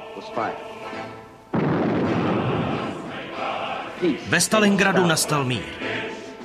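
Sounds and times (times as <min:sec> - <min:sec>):
speech: 0:00.2 - 0:01.6, 0:04.0 - 0:06.1
loud gunshot: 0:01.5 - 0:03.0
long rumbling echo of a gunshot: 0:01.5 - 0:03.9.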